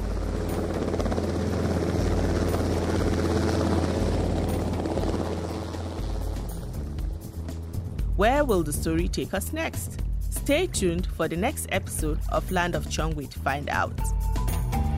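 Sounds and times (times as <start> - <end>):
police helicopter rotor thumping: 0.0 - 8.2
police helicopter engine roaring: 0.0 - 13.0
speech: 8.2 - 14.2.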